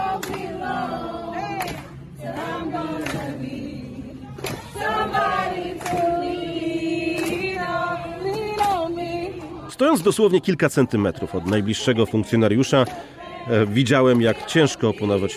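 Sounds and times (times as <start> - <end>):
crowd ambience at a street protest: 0.0 - 15.3
gospel choir singing outdoors at a street protest: 0.0 - 15.3
sharp percussive hits or claps: 1.6 - 2.0, 4.4 - 4.7, 5.8 - 6.1, 7.1 - 7.4
speech: 9.8 - 15.3.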